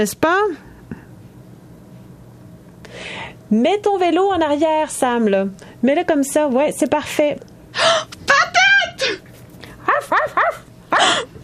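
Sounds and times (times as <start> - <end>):
speech: 0.0 - 0.7, 2.9 - 8.5, 10.0 - 11.3
dog giving high yappy barks: 9.9 - 11.2.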